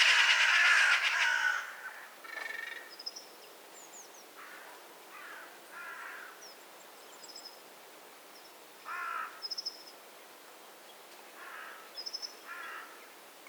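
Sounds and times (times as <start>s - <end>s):
Eurasian magpie harsh calls: 0.0s - 2.9s.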